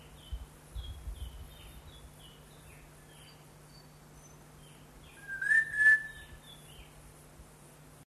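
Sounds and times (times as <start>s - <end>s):
greater ground-robin steady whistle: 5.2s - 6.4s.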